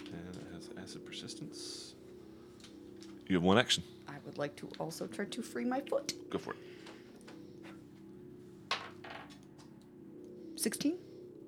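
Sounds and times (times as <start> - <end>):
low steady hum: 0.0 - 11.4
speech: 0.9 - 2.0, 3.3 - 6.6, 10.6 - 11.0
small dice clattering across a hard tabletop: 8.7 - 9.4.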